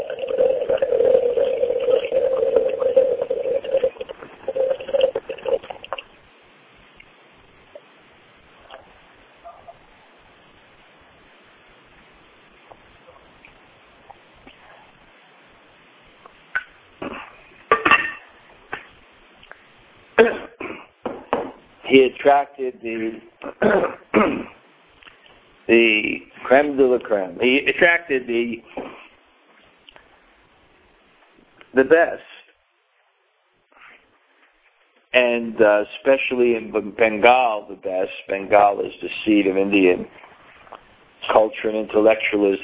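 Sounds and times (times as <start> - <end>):
person sipping water: 0.0 - 6.0
water pouring: 0.0 - 6.1
person coughing: 20.2 - 21.0, 23.4 - 24.6
speech: 22.0 - 24.5, 25.7 - 28.8, 31.8 - 32.3, 35.5 - 40.2, 41.3 - 42.6.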